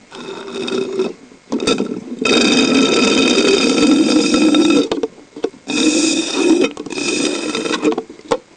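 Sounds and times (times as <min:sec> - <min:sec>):
drinking water through a straw: 0:00.1 - 0:08.0.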